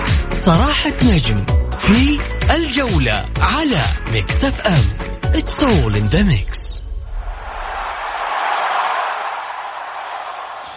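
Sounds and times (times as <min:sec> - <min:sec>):
speech: 0:00.4 - 0:06.8
recorded stadium crowd roaring played back on a radio programme: 0:07.1 - 0:10.7.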